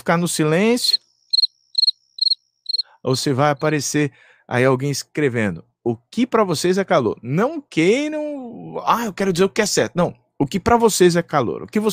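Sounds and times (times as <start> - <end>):
speech: 0.0 - 1.0, 3.0 - 11.9
cricket chirping: 0.7 - 3.0.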